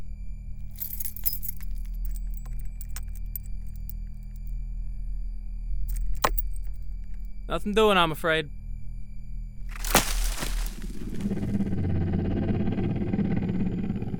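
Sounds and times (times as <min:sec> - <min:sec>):
steady low droning hum: 0:00.0 - 0:14.1
keys including an engine key jingling while handed over: 0:00.7 - 0:04.1, 0:05.9 - 0:06.8
speech: 0:07.5 - 0:08.6.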